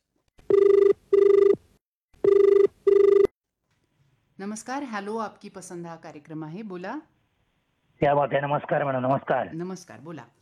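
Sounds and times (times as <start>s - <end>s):
telephone ringing for an incoming call: 0.5s - 1.6s, 2.2s - 3.3s
speech: 4.6s - 7.2s, 8.0s - 10.4s.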